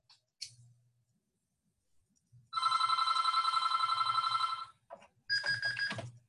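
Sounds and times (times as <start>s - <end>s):
phone ringing with a trilling electronic tone: 2.6s - 6.2s.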